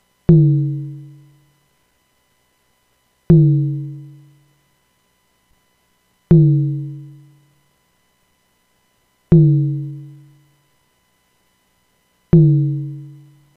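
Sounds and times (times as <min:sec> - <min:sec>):
nonlinear drum: 0:00.3 - 0:01.2, 0:03.3 - 0:04.2, 0:06.3 - 0:07.2, 0:09.3 - 0:10.3, 0:12.4 - 0:13.3.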